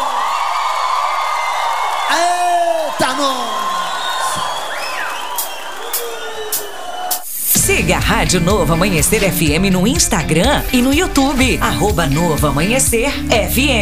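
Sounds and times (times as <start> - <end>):
loud rising whoops: 0.0 - 7.3
audience shouting and cheering: 0.0 - 12.8
speech: 3.0 - 3.6, 7.8 - 13.8.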